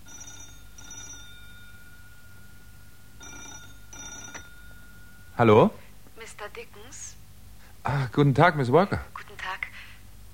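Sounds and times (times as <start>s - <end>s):
telephone bell ringing with trilling bursts: 0.0s - 5.8s
steady hiss: 0.0s - 10.3s
speech: 5.4s - 5.8s, 6.6s - 7.2s, 7.8s - 9.2s.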